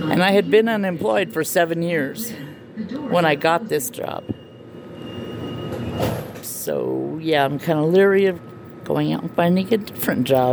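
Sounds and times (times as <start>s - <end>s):
commuter train rolling into a station: 0.0s - 7.8s
faint high whine: 0.0s - 10.5s
speech: 0.2s - 4.3s, 6.0s - 10.5s
screeching: 3.5s - 6.4s.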